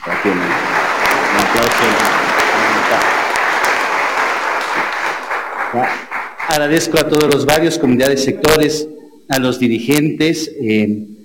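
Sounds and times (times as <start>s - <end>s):
crowd applauding: 0.0s - 7.5s
speech: 0.2s - 0.7s, 5.7s - 11.1s.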